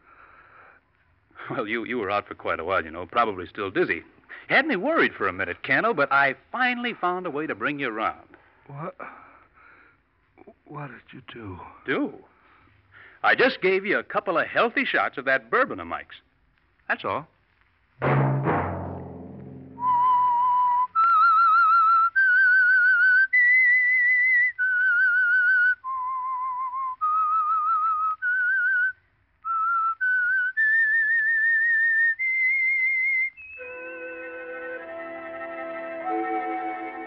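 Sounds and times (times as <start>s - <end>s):
speech: 1.5s - 9.2s, 10.7s - 12.3s, 13.2s - 16.3s, 16.9s - 17.3s, 18.0s - 18.3s
orchestral music: 18.0s - 20.1s, 33.6s - 37.0s
solo whistled melody of long sustained notes: 19.8s - 28.9s, 29.5s - 37.0s.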